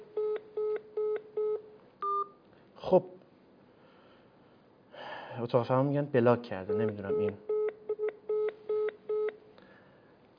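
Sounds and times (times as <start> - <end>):
dual-tone telephone keypad beeps dialing a number: 0.2 - 2.3, 6.7 - 9.4
speech: 2.9 - 3.2, 5.4 - 7.5.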